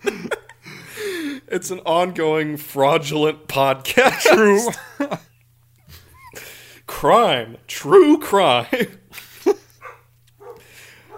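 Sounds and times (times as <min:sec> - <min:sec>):
low steady hum: 0:00.0 - 0:11.1
speech: 0:01.5 - 0:05.3, 0:07.0 - 0:09.0
dog barking: 0:09.8 - 0:11.1.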